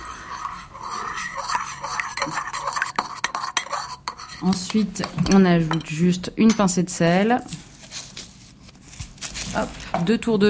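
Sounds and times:
utensil stirring vinaigrette with olive oil in a bowl: 0:00.0 - 0:06.7
speech: 0:04.4 - 0:07.6, 0:09.6 - 0:10.4.

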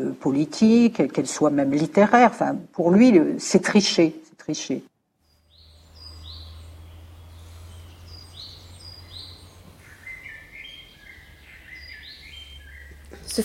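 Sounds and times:
speech: 0:00.2 - 0:04.9
small birds chirping and whistling in a countryside garden: 0:05.2 - 0:13.4
steady low hum: 0:05.2 - 0:13.4.

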